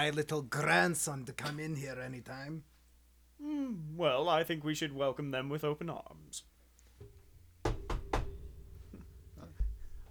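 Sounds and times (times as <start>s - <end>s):
speech: 0.0s - 2.7s, 3.4s - 7.1s
soft thumps: 6.9s - 10.0s
knocking on a door: 7.0s - 8.8s
low hum: 7.0s - 10.0s.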